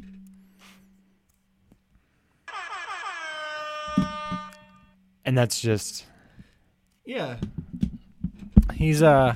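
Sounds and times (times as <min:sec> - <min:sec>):
air horn blast: 0:02.5 - 0:05.0
speech: 0:05.3 - 0:06.1, 0:07.1 - 0:07.6, 0:08.8 - 0:09.3.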